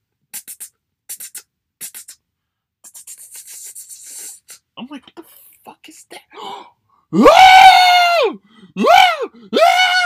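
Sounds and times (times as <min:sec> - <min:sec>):
speech: 0:04.8 - 0:05.2, 0:05.8 - 0:07.6
man imitating his own startled scream: 0:07.1 - 0:10.0.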